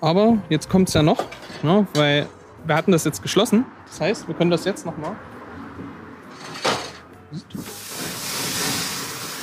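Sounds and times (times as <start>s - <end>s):
speech: 0.0s - 5.4s, 7.3s - 7.8s
fat and meat-and-pepper sauce dripping and hissing on a grill as flames flare up: 7.6s - 9.4s.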